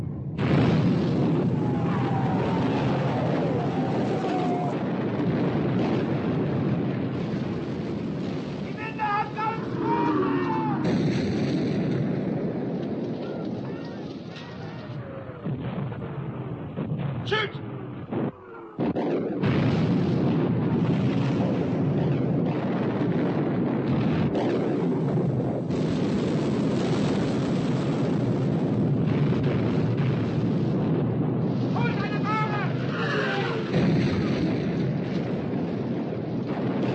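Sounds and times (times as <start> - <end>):
naval gunfire and explosions in a sea battle between warships: 0.0 - 36.9.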